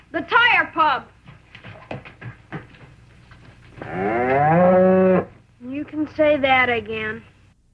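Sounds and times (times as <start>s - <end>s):
speech: 0.1s - 1.2s, 5.9s - 7.3s
cow mooing: 3.8s - 5.4s.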